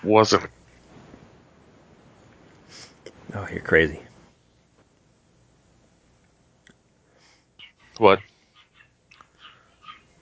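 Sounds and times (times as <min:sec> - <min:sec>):
speech: 0:00.0 - 0:00.6, 0:03.3 - 0:04.1, 0:08.0 - 0:08.3
dog yelping and whimpering: 0:08.5 - 0:10.2.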